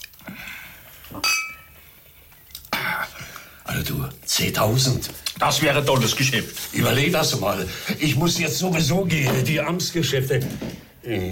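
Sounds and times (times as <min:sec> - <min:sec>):
wine glasses clinking in a toast: 0:01.2 - 0:01.8
speech: 0:03.8 - 0:11.3.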